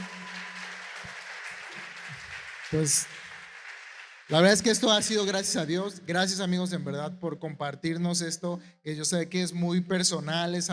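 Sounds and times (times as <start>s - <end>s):
crowd applauding: 0.0s - 5.6s
speech: 2.7s - 3.2s, 4.3s - 10.7s.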